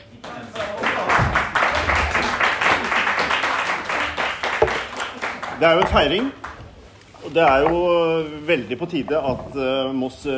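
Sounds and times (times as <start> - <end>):
small group clapping at a toast for the first Pride in Moss Norway: 0.1 - 6.7
speech: 5.6 - 6.4, 7.3 - 10.3.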